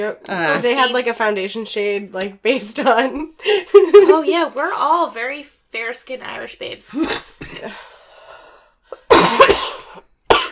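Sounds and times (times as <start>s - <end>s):
speech: 0.0s - 7.9s
person coughing raspy and harsh: 6.9s - 7.8s, 9.0s - 10.4s.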